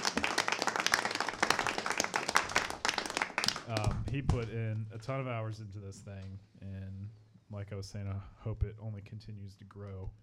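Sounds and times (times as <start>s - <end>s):
audience applause of many hands clapping: 0.0s - 4.0s
speech: 3.7s - 10.2s.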